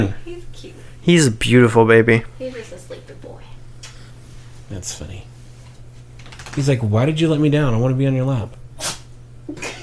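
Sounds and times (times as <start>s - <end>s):
speech: 0.0s - 3.2s, 4.7s - 5.3s, 6.6s - 8.9s
steady low hum: 0.0s - 9.8s
small quick sneeze: 8.8s - 9.1s.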